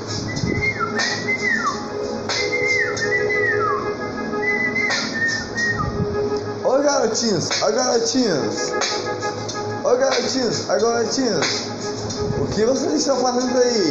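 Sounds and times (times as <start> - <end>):
steady hum: 0.0 - 13.8
person whistling an imitation of a small bird: 0.2 - 3.8, 4.4 - 6.0
speech: 7.2 - 13.8.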